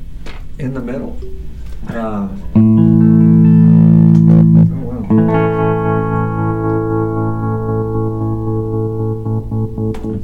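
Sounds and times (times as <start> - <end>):
speech: 0.6 - 2.9
electric guitar chords through an amp square wave tremolo with reverb: 2.5 - 10.2.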